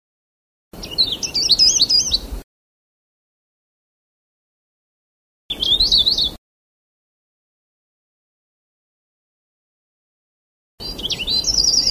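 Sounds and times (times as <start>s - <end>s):
Sulawesi leaf warbler song: 0.8s - 2.4s, 5.5s - 6.4s, 10.8s - 11.8s.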